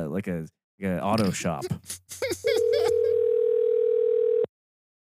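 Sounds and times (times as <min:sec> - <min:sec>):
speech: 0:00.0 - 0:02.5
phone line ringback tone: 0:02.6 - 0:04.5.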